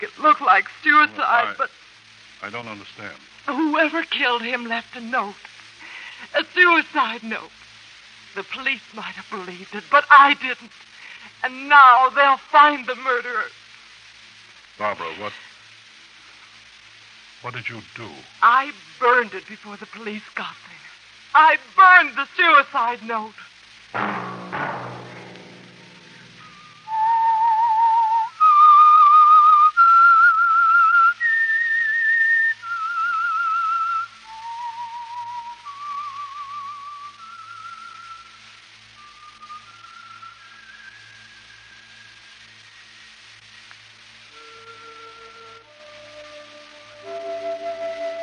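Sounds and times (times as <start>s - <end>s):
speech: 0.0s - 5.6s, 6.2s - 7.6s, 8.4s - 13.6s, 14.8s - 15.5s, 17.4s - 25.0s
lone whistled melody in a slow haunting tune: 26.2s - 38.4s, 39.0s - 43.0s, 44.4s - 48.2s.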